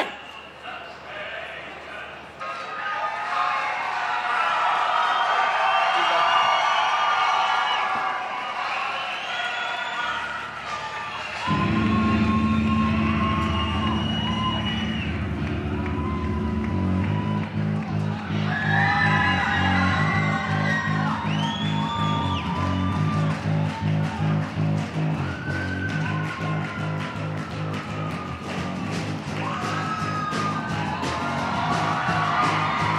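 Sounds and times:
large concert audience cheering, whooping and yelling: 0:02.4 - 0:32.9
heavy sustained low musical drone or bass tones: 0:11.5 - 0:27.7.

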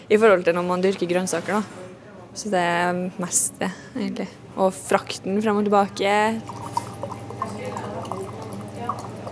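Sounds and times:
speech: 0:00.1 - 0:06.8
water being poured into glasses: 0:06.0 - 0:09.2.

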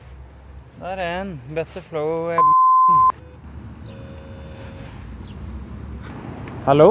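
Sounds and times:
speech: 0:00.8 - 0:03.3, 0:06.6 - 0:06.8
electronic call tone from an intercom buzzer: 0:02.4 - 0:03.1.

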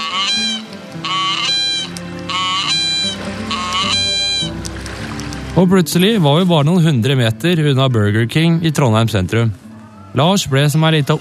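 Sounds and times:
goose honking while being grabbed: 0:00.0 - 0:04.7
speech: 0:05.6 - 0:11.1.

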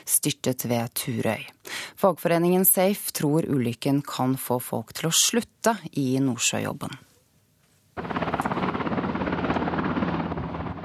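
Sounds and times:
speech: 0:00.2 - 0:07.1
helicopter rotor thumping while landing at an airport: 0:08.0 - 0:10.8.

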